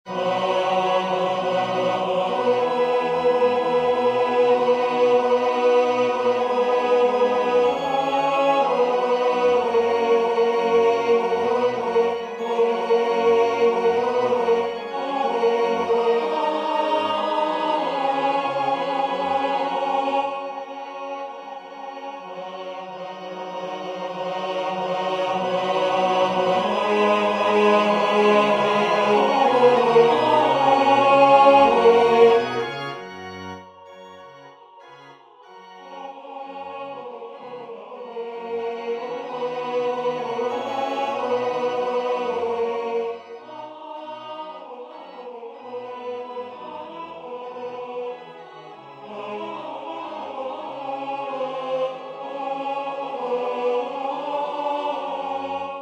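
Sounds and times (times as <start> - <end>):
tenor singing sacred music: 0.1 - 55.8.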